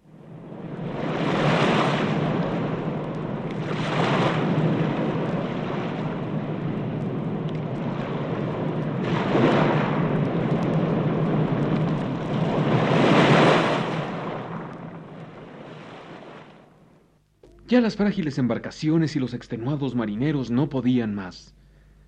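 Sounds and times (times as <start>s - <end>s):
rough stormy sea with heavy waves crashing: 0.0s - 16.9s
speech: 17.7s - 21.6s.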